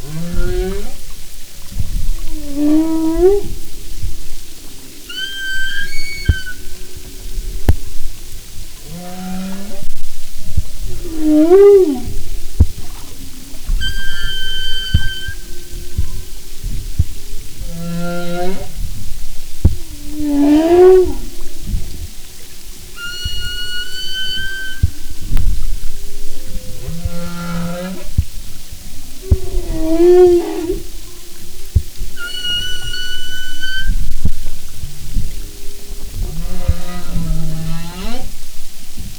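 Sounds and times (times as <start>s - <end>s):
humpback whale song: 0.0s - 39.1s.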